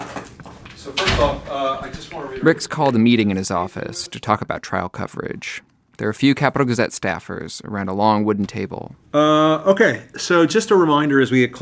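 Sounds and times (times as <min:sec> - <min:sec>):
office door closing with a solid thud: 0:00.8 - 0:02.1
speech: 0:00.8 - 0:11.5.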